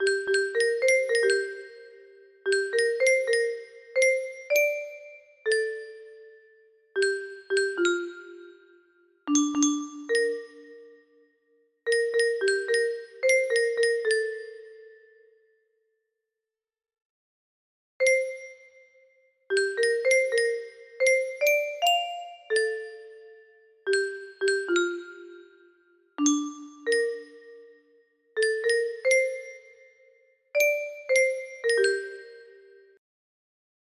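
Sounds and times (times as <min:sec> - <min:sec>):
xylophone: 0:00.0 - 0:06.4, 0:07.0 - 0:11.1, 0:11.9 - 0:15.0, 0:18.0 - 0:18.6, 0:19.5 - 0:27.8, 0:28.4 - 0:29.8, 0:30.6 - 0:33.0
music box melody: 0:00.0 - 0:11.2, 0:11.9 - 0:15.2, 0:18.0 - 0:18.8, 0:19.5 - 0:33.0.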